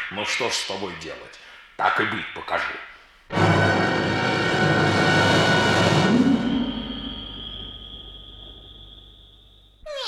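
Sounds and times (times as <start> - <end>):
speech: 0.2 - 2.9
loud noisy burst: 3.3 - 8.1
thin whistling tone: 6.5 - 9.8.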